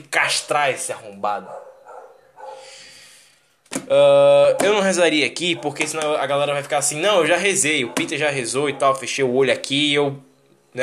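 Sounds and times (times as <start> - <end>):
speech: 0.0 - 1.7, 3.8 - 10.8
dog barking in a room with echo: 1.4 - 2.7, 4.5 - 6.1, 7.2 - 9.2.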